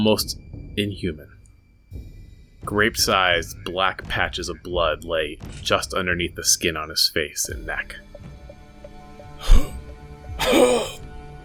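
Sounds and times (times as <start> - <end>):
speech: 0.0 - 8.1, 10.4 - 11.0
harsh wet coughing with wheezy rasp: 9.4 - 11.0.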